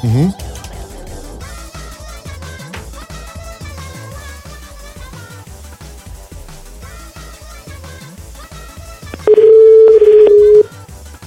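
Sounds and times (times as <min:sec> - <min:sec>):
long steady mid-pitched telephone tone while dialing: 0:09.2 - 0:10.7.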